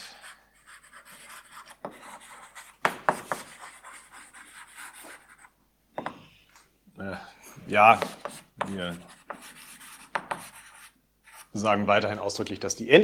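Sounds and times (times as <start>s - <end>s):
formulas being written on a board during a logic lecture: 0.0s - 6.2s, 7.8s - 11.6s
sharp taps on a board: 2.8s - 3.5s, 10.1s - 10.5s
speech: 7.0s - 9.1s, 11.6s - 13.0s.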